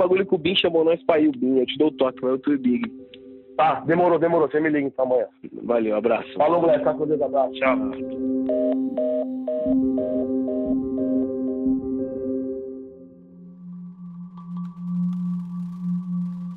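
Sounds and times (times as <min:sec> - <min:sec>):
speech: 0:00.0 - 0:03.0, 0:03.6 - 0:09.4
steady electronic telephone line tone after hang-up: 0:07.7 - 0:16.5
quick evenly spaced telephone line beeps: 0:08.5 - 0:11.2.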